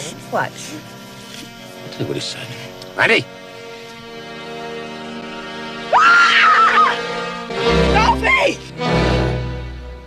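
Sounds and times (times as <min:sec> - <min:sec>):
speech: 0:00.1 - 0:01.0, 0:01.8 - 0:03.4, 0:06.0 - 0:09.3
woman screaming in a film clip: 0:05.9 - 0:07.0.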